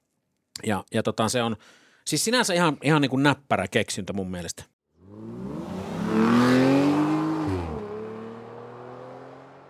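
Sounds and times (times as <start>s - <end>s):
speech: 0.6s - 4.7s
sports car engine revving in sport mode with exhaust flaps open: 5.0s - 9.6s.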